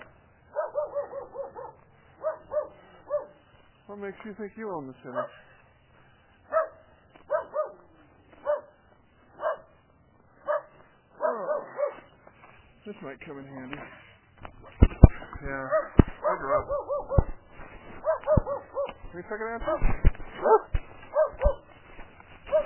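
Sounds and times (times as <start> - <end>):
dog barking: 0.5 - 3.4, 5.1 - 5.4, 6.5 - 8.8, 9.4 - 9.7, 10.4 - 12.1, 15.7 - 17.4, 18.0 - 19.0, 20.4 - 21.7, 22.5 - 22.6
speech: 4.0 - 5.6, 12.9 - 17.2, 19.1 - 20.8.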